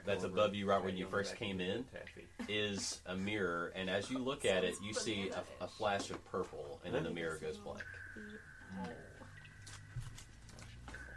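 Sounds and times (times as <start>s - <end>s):
speech: 0.0s - 9.2s
faint steady hum: 0.0s - 11.1s
water dripping: 6.7s - 11.1s.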